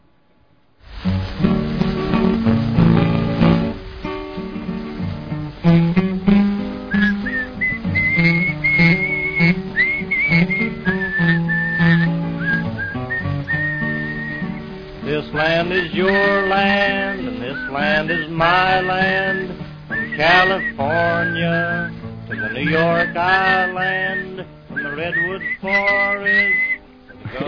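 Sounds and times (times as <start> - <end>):
song with steady full accompaniment playing: 1.5 - 27.4
person whistling a bright wavering melody: 6.9 - 14.6, 16.0 - 26.8.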